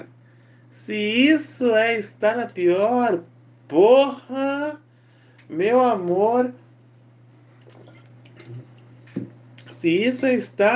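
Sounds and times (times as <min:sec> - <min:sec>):
speech: 0:00.7 - 0:04.8, 0:05.5 - 0:06.6, 0:09.8 - 0:10.7
person taking a sip of water: 0:07.6 - 0:09.7.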